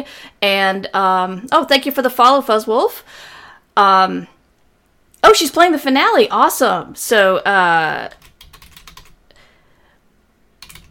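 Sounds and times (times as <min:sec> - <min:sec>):
speech: 0:00.0 - 0:04.3, 0:05.2 - 0:08.2
typing on a computer keyboard: 0:08.1 - 0:09.2, 0:10.6 - 0:10.8.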